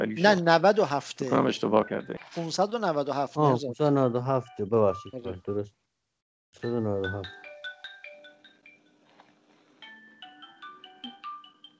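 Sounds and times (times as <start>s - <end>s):
speech: 0.0s - 5.8s, 6.5s - 7.5s
mobile phone ringtone: 6.6s - 8.9s, 9.8s - 11.7s.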